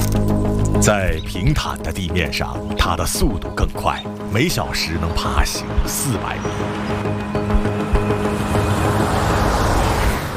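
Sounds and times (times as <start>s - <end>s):
speech: 0.8s - 6.9s
tire and wind noise of passing car: 5.6s - 10.3s
car driving past on a road at about 80 km per hour: 6.5s - 10.3s.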